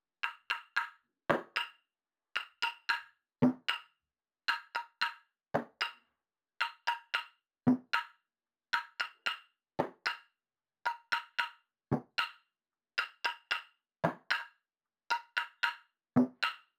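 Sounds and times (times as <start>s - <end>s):
percussion loop: 0.2s - 1.8s, 2.4s - 3.9s, 4.5s - 6.0s, 6.6s - 8.1s, 8.8s - 10.3s, 10.9s - 12.4s, 13.0s - 16.7s.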